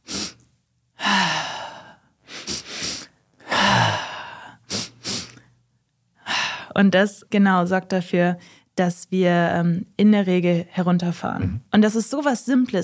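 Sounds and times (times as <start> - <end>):
two people sniffing nasal inhales: 0.0 - 0.4, 1.8 - 5.5
speech: 6.8 - 12.8.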